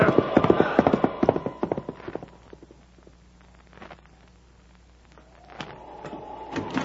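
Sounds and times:
horse hooves clip-clopping in a sleet storm: 0:00.0 - 0:02.8.

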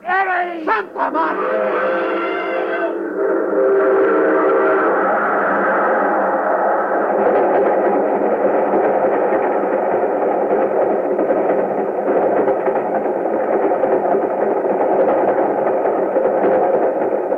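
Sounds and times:
train rushing past with roaring rumble: 0:00.0 - 0:17.3
laughter: 0:00.6 - 0:01.9
train whistle blasting: 0:01.2 - 0:06.5.

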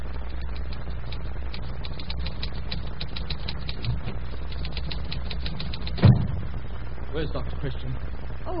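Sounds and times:
low hum: 0:00.0 - 0:08.5
manual typewriter being pounded in a doctor's office: 0:00.6 - 0:06.1
speech: 0:07.2 - 0:08.5.

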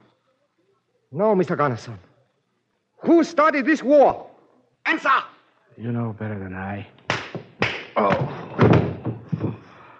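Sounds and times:
speech: 0:01.1 - 0:02.1, 0:03.0 - 0:04.3, 0:04.9 - 0:07.0, 0:08.0 - 0:08.7
dull bumps and knocks: 0:07.4 - 0:09.6
kneeling prisoner knocked off a baseball bat falling with a heavy thud: 0:07.4 - 0:09.6.

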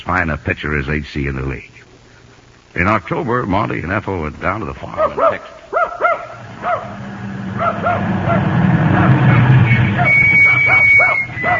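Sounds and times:
speech: 0:00.0 - 0:01.9, 0:02.8 - 0:05.6, 0:06.6 - 0:08.5
dog barking in short yippy bursts: 0:04.9 - 0:07.0, 0:07.6 - 0:09.3, 0:10.0 - 0:11.5.

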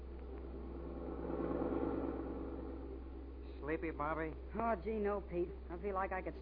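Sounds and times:
car engine running heard from inside the cabin: 0:00.0 - 0:05.0
speech: 0:03.7 - 0:06.4.

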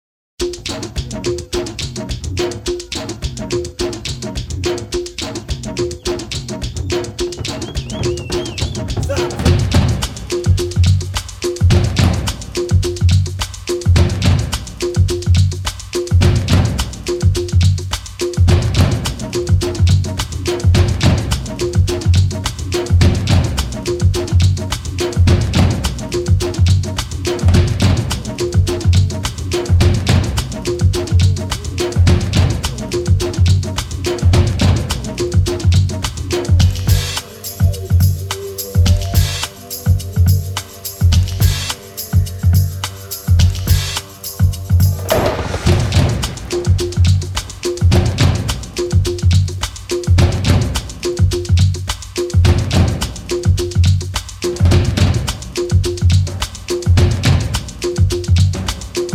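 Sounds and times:
new age drum music: 0:00.4 - 0:59.1.

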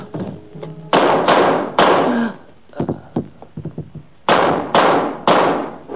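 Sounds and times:
loud sharp gunshots fired outside a bungalow: 0:00.9 - 0:02.3, 0:04.3 - 0:05.8.

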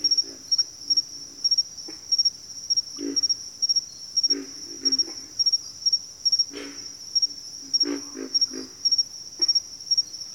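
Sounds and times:
sustained high insect whine: 0:00.0 - 0:10.3
pig frogs grunting in a bayou: 0:03.0 - 0:03.3, 0:04.3 - 0:05.3, 0:06.5 - 0:06.9, 0:07.7 - 0:08.8.

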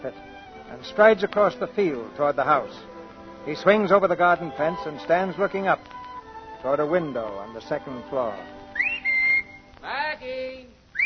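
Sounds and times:
speech: 0:00.0 - 0:06.0, 0:06.6 - 0:08.6
man whistling a short calling tune: 0:08.6 - 0:09.7.

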